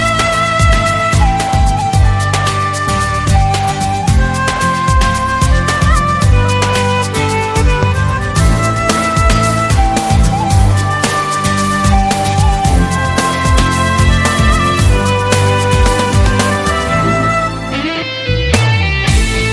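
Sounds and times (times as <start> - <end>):
dashing music ringtone: 0.0 - 19.4.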